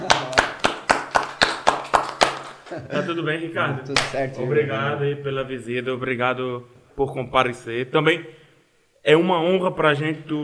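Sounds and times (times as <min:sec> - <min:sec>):
round of applause welcoming a guest: 0:00.0 - 0:02.7, 0:03.9 - 0:04.3
laughter: 0:02.6 - 0:03.4
speech: 0:02.8 - 0:08.4, 0:09.0 - 0:10.4.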